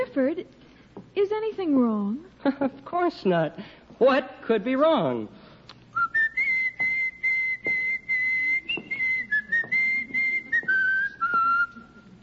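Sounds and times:
speech: 0.2s - 5.4s
person whistling a tune: 6.0s - 12.0s.

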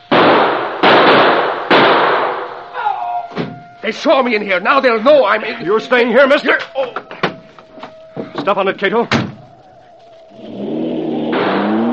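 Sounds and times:
gunshots: 0.0s - 2.5s, 11.3s - 11.9s
speech: 3.9s - 7.1s, 8.4s - 9.2s.

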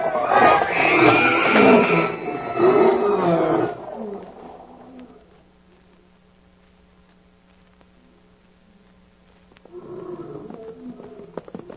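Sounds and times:
several wild big cats in cages roaring: 0.0s - 5.2s, 9.7s - 11.7s.

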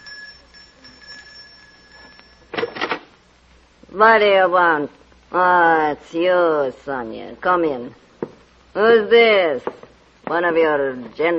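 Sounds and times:
short bright electric doorbell ringing: 0.0s - 2.6s
faint steady whine: 0.0s - 11.3s
speech: 3.9s - 8.0s, 8.8s - 11.3s.

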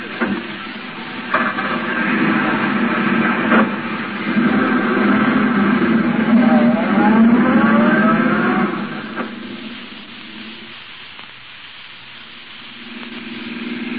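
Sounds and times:
hissy noise: 0.0s - 13.9s
taxi engine revving and pulling away: 2.1s - 10.6s.

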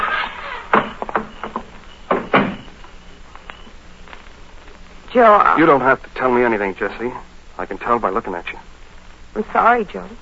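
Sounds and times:
house door pushed shut with a solid thump: 0.7s - 2.7s
speech: 5.2s - 8.7s, 9.3s - 10.1s.

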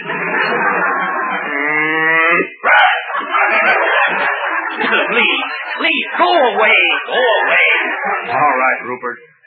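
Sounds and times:
laughter: 0.0s - 8.9s
cow mooing and bellowing: 1.5s - 2.6s
speech: 6.3s - 7.6s, 8.2s - 9.4s.

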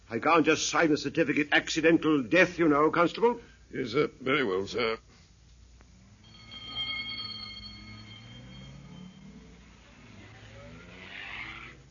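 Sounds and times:
thin steady whine: 0.0s - 11.8s
speech: 0.1s - 5.1s
ambulance engine revving as it pulls away: 7.8s - 11.8s.

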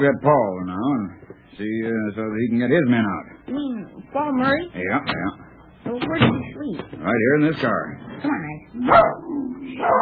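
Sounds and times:
speech: 0.0s - 0.8s, 1.5s - 10.0s
dog barking with whimpering yelps: 8.8s - 9.2s, 9.8s - 10.0s.

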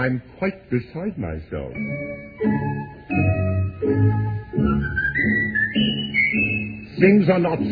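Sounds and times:
speech: 0.0s - 5.4s, 7.0s - 7.7s
instrumental accompaniment of repeated chords: 1.7s - 7.7s
person whistling a melody: 4.6s - 7.0s.

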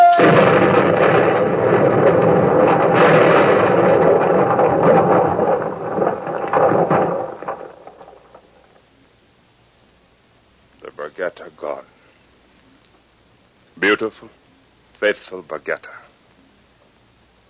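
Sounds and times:
torpedo explosion sinking a ship: 0.0s - 8.6s
scattered crashes: 0.0s - 8.9s
speech: 14.0s - 14.4s, 15.0s - 16.0s.

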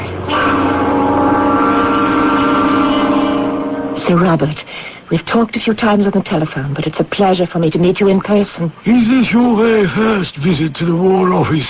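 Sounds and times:
propeller engine running: 0.0s - 4.7s
speech: 4.1s - 11.6s.

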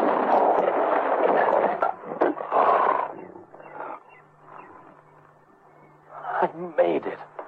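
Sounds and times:
lion roaring as it leaps: 0.2s - 4.9s
speech: 6.4s - 7.3s.

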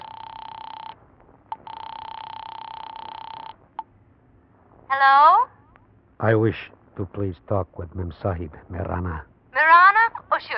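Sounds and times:
steady telephone tone on the line in a drugstore phone booth: 0.0s - 3.8s
speech: 4.9s - 5.6s, 6.2s - 9.3s.

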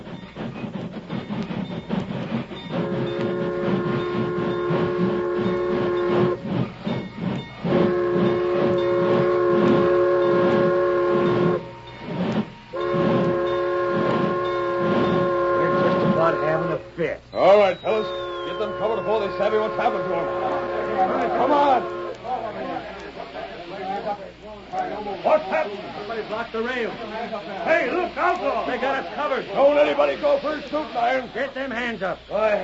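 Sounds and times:
steam train approaching and stopping with rumble: 0.0s - 32.6s
steam train whistle blasts: 1.3s - 17.0s, 17.6s - 22.4s
speech: 28.4s - 32.6s.

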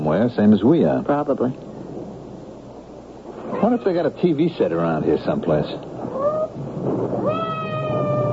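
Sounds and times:
rain-like hiss: 0.0s - 8.3s
speech: 0.1s - 1.7s, 3.6s - 5.9s
cat meowing: 3.5s - 4.0s, 6.1s - 6.5s, 7.2s - 8.3s.

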